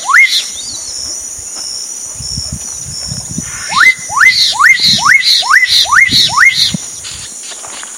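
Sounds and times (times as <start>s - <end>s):
black-capped donacobius repeating a rising whistled note: 0.0s - 0.8s, 3.4s - 6.8s
continuous high insect drone: 0.0s - 7.9s.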